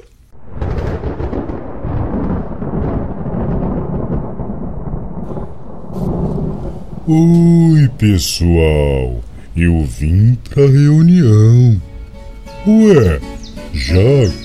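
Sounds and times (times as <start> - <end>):
dense heavy rain downpour: 0.2 - 14.4
low thunder: 0.3 - 9.6
speech: 7.1 - 11.9, 12.6 - 14.4.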